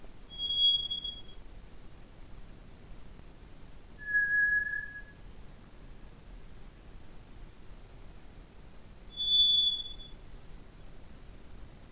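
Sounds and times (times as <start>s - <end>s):
White's thrush song of long pure whistles: 0.2s - 1.8s, 3.7s - 5.6s, 9.1s - 10.2s.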